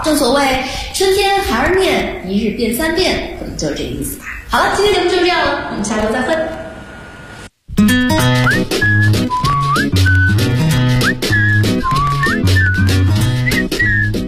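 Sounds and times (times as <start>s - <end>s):
speech: 0.1s - 6.6s
steady instrumental backing music: 7.7s - 14.2s
person whistling a lively tune: 8.3s - 14.2s.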